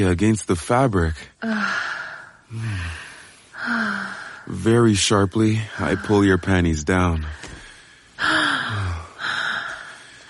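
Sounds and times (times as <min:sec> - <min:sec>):
speech: 0:00.0 - 0:03.0, 0:03.6 - 0:07.5
soft breath: 0:01.4 - 0:04.6, 0:07.2 - 0:10.2.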